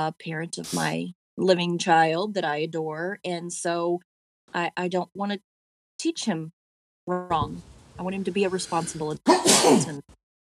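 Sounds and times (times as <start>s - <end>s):
speech: 0.0s - 10.2s
person sneezing: 9.3s - 10.0s.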